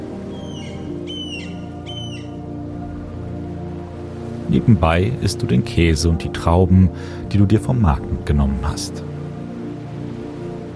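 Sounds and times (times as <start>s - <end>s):
low rumble of waves rolling onto the shore: 0.0s - 1.8s, 2.4s - 10.7s
distant seagull calling over a beach: 0.0s - 4.0s
speech: 4.5s - 9.1s.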